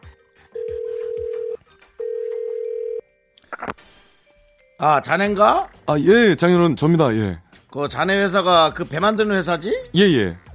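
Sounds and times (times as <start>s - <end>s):
telephone ringing with an incoming call: 0.5s - 3.0s
speech: 4.8s - 10.4s.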